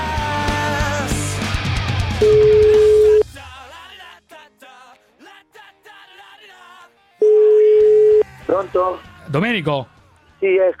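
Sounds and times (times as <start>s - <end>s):
music: 0.0s - 10.7s
speech: 2.2s - 2.4s, 8.9s - 10.7s
telephone ringing tone for an incoming call on a radio talk show: 2.2s - 3.2s, 7.2s - 8.3s.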